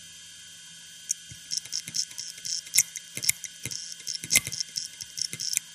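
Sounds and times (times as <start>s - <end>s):
faulty SAS hard drive: 1.1s - 5.7s.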